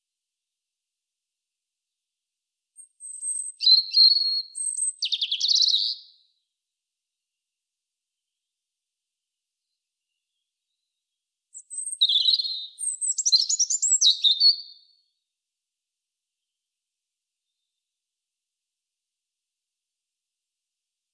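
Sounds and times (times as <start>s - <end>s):
European robin singing Erithacus rubecula: 2.8s - 6.2s, 11.5s - 14.9s.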